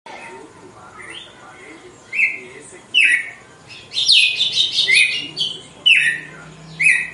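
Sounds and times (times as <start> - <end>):
female red-cowled cardinal whistled song: 2.1 - 7.1.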